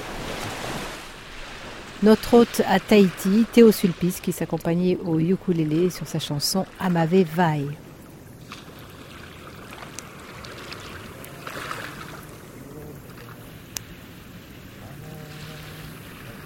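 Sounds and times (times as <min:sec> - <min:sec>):
water lapping on a beach at night: 0:00.0 - 0:16.4
speech: 0:02.0 - 0:07.9
faint sharp clicks: 0:13.7 - 0:13.9.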